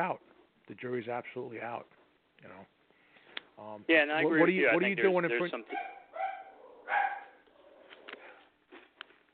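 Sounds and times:
speech: 0:00.0 - 0:02.8, 0:03.6 - 0:05.9
small dog giving high-pitched barks and yips: 0:05.7 - 0:08.4.

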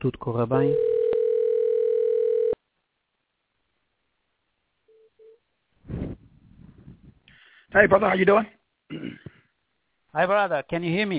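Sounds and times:
speech: 0:00.0 - 0:00.9, 0:07.7 - 0:09.3, 0:10.1 - 0:11.1
telephone dial tone: 0:00.8 - 0:02.6.

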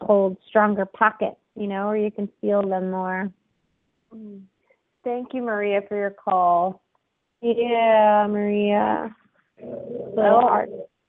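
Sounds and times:
speech: 0:00.1 - 0:03.4, 0:04.1 - 0:06.8, 0:07.4 - 0:10.9
dog growling: 0:09.6 - 0:10.8.

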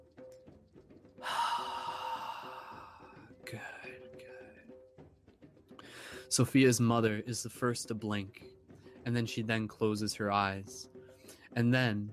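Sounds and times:
soft sustained music: 0:00.0 - 0:12.1
loud breathy exhale: 0:01.2 - 0:03.1
deep drawn-out breath in: 0:01.2 - 0:03.2, 0:05.8 - 0:06.3
speech: 0:03.5 - 0:04.0, 0:06.3 - 0:10.9, 0:11.6 - 0:12.1.

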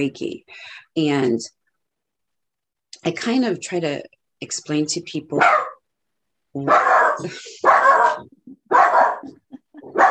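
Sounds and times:
speech: 0:00.0 - 0:01.6, 0:03.0 - 0:05.7, 0:06.6 - 0:09.4
dog barking at a delivery: 0:05.4 - 0:05.8, 0:06.6 - 0:10.0.

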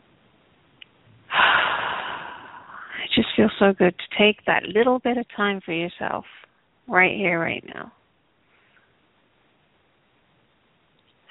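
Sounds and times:
deep breath during a relaxation exercise: 0:01.3 - 0:03.0
speech: 0:03.2 - 0:08.0.

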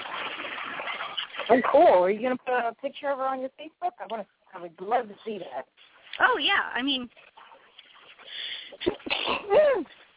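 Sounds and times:
speech: 0:01.5 - 0:07.3, 0:09.4 - 0:10.0
sneeze from someone working on a custom toy horse figure: 0:08.9 - 0:09.8.

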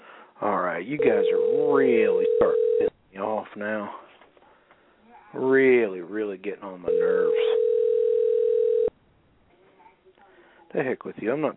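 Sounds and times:
speech: 0:00.8 - 0:04.0, 0:05.3 - 0:07.6, 0:10.7 - 0:11.5
telephone dial tone after the handset is hung up: 0:01.0 - 0:02.9, 0:06.9 - 0:08.9.

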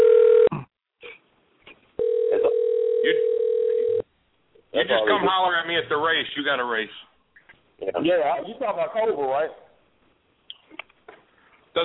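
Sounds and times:
electronic phone ringtone beeping on a dropped call: 0:02.0 - 0:04.0
speech: 0:04.9 - 0:07.1, 0:07.8 - 0:09.6.

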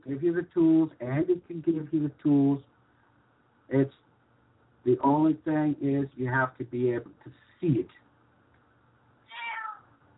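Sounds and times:
speech: 0:00.1 - 0:02.7, 0:03.7 - 0:04.0, 0:04.8 - 0:08.0
cat meowing: 0:09.3 - 0:09.9.

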